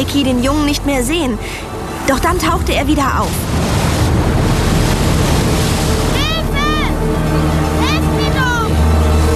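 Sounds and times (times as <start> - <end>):
speech: 0.0 - 3.9
sea waves crashing including a large wave: 0.0 - 9.3
wind buffeting: 1.7 - 6.6.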